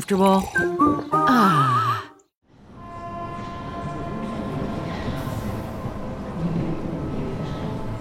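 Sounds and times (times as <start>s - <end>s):
speech: 0.0s - 1.8s
passenger train rumbling on rails: 2.5s - 8.0s.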